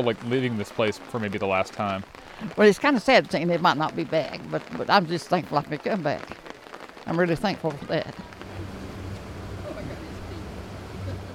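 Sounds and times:
faint indistinct voices murmuring: 0.0 - 3.2, 3.9 - 11.3
speech: 0.0 - 8.7
water rushing: 0.0 - 11.3
motorboat engine drone on a lake: 8.3 - 11.3.

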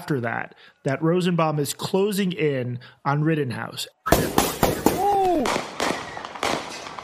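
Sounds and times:
speech: 0.0 - 4.6
handgun fired into the air: 4.1 - 7.0.

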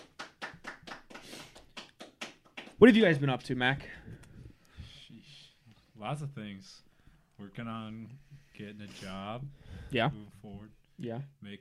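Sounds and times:
small round of hand clapping applause: 0.0 - 3.1
speech: 2.8 - 4.2, 6.0 - 6.8, 7.4 - 11.5.

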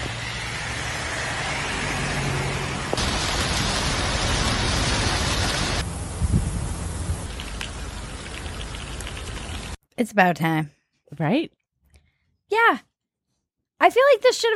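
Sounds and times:
heavy artificially induced rain pouring down in Dubai: 0.0 - 9.8
speech: 10.0 - 11.6, 12.5 - 12.9, 13.8 - 14.5.

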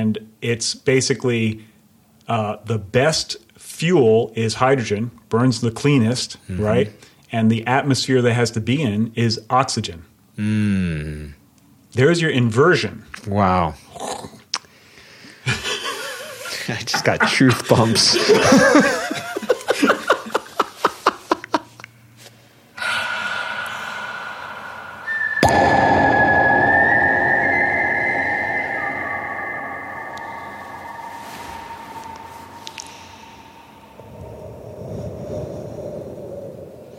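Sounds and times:
speech: 0.0 - 1.7, 2.3 - 14.2, 16.7 - 19.2
laughter: 17.4 - 21.7
person whistling a sustained tone: 22.8 - 34.2
rushing noisy backdrop: 22.8 - 35.0.

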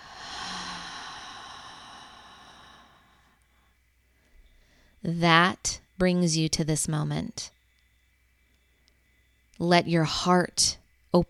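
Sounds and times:
deep breathy exhale during a guided breathing exercise: 0.0 - 3.8
speech: 5.0 - 7.6, 9.6 - 11.2.

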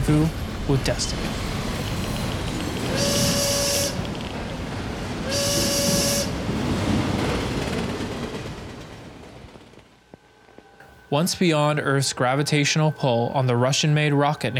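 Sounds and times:
train rumbling on rails: 0.0 - 14.5
speech: 0.1 - 1.5, 11.1 - 14.5
loud hissing steam-whistle blasts: 2.9 - 4.0, 5.2 - 6.4.

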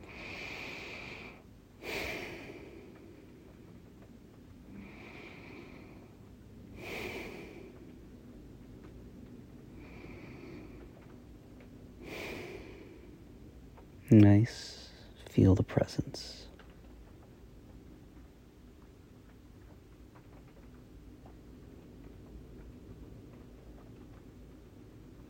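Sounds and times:
slow deep human breathing: 0.0 - 8.2, 9.6 - 13.5
speech: 14.1 - 14.7, 15.4 - 16.5.

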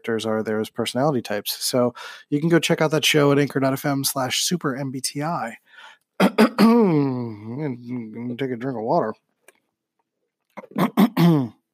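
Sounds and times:
speech: 0.0 - 5.6, 6.2 - 9.3, 10.6 - 11.6
throat clearing: 6.2 - 7.7, 10.6 - 11.6.

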